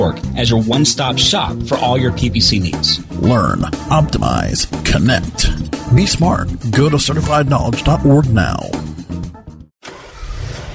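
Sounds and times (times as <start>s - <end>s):
speech: 0.0s - 8.9s
car engine cranking and revving with a rising whine: 9.8s - 10.7s.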